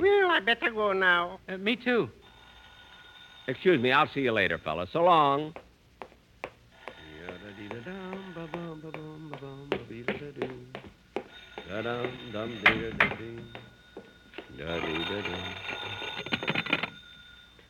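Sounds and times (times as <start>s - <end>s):
speech: 0.4s - 2.2s, 3.5s - 5.6s, 11.8s - 13.7s, 14.6s - 16.0s
telephone bell ringing in a house: 2.2s - 4.6s, 6.9s - 10.4s, 11.2s - 17.6s.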